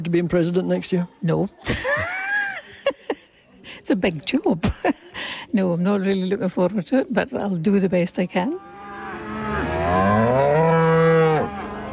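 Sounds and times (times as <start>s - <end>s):
speech: 0.0s - 2.2s, 3.7s - 8.7s
cow mooing at an agricultural show: 8.6s - 11.9s
steady outdoor hum at an agricultural show: 8.6s - 11.9s.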